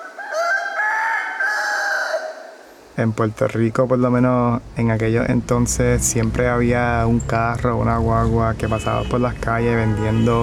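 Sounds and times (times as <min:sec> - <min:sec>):
rooster crowing in the morning in Puerto Rico: 0:00.0 - 0:02.7
speech: 0:03.0 - 0:10.4.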